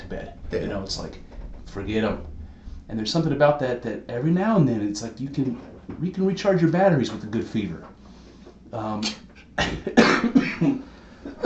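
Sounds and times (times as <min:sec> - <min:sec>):
speech: 0:00.1 - 0:08.0, 0:08.7 - 0:11.4
harsh raspy coughs: 0:09.6 - 0:11.4.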